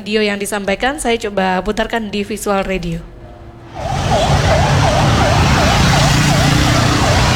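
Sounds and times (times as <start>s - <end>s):
speech: 0.0s - 3.1s
fire engine siren: 3.7s - 7.3s.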